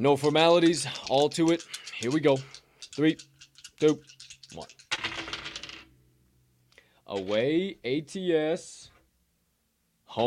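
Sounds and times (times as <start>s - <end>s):
speech: 0.0s - 4.8s, 7.1s - 8.9s
dice shaken in a cup or hand and rolled: 0.1s - 5.9s.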